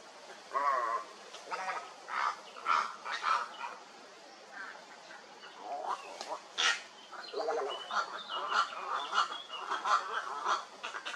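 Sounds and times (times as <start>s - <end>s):
several herons croaking: 0.0s - 11.1s.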